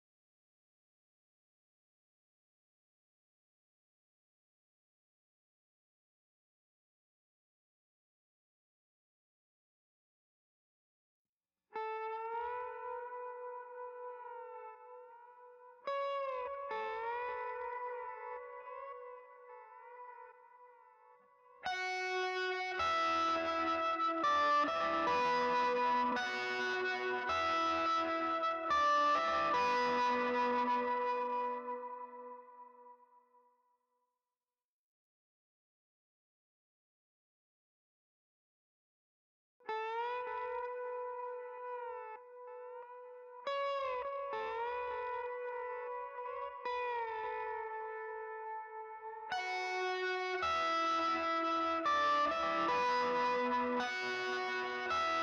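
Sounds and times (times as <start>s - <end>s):
guitars: 11.8s - 32.9s, 39.7s - 55.2s.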